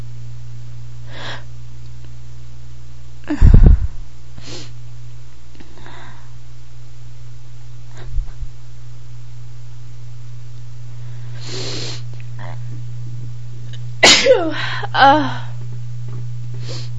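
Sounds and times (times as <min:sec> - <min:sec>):
steady low hum: 0:00.0 - 0:16.9
single forceful sneeze: 0:14.0 - 0:14.5.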